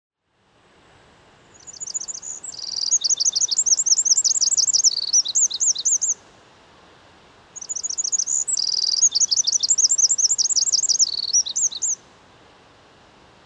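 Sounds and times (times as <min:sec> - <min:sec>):
Eurasian wren Troglodytes troglodytes trilling song: 0:01.5 - 0:06.2, 0:07.6 - 0:12.0.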